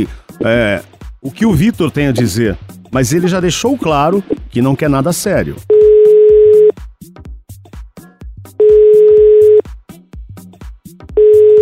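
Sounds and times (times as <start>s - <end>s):
speech: 0.0s - 5.8s
telephone ringback tone as a call is placed: 5.7s - 6.7s, 8.6s - 9.6s, 11.2s - 11.6s.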